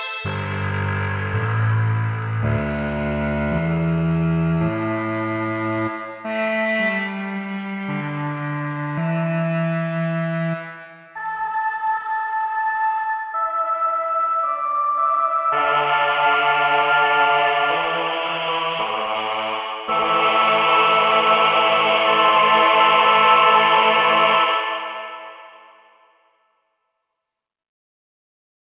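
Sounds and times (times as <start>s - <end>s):
tape sampler keyboard: 0.1s - 25.6s.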